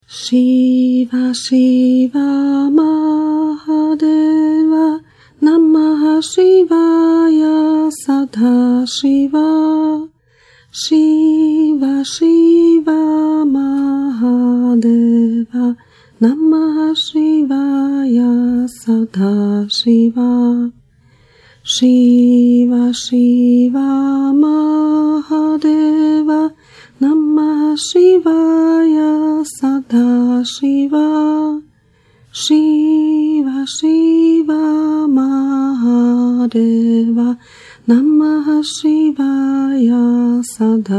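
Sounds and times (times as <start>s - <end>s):
devotional chant: 0.0s - 40.9s.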